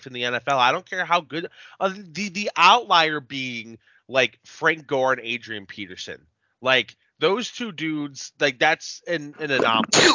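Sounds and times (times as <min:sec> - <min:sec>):
speech: 0:00.0 - 0:10.1
person sneezing sharply: 0:09.4 - 0:10.1.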